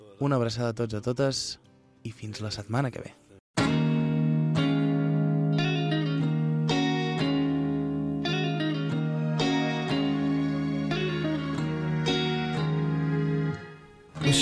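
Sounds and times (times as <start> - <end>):
speech: 0.2 - 3.2
effects-laden electric guitar chords in a song intro: 3.6 - 14.4.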